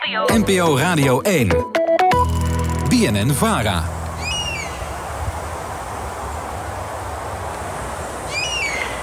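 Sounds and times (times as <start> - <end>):
speech: 0.1 - 1.7, 2.9 - 4.0
steady background hiss: 3.3 - 9.0
European honey buzzard calling in the north of the Veluwe, Netherlands: 4.2 - 5.0, 8.3 - 9.0.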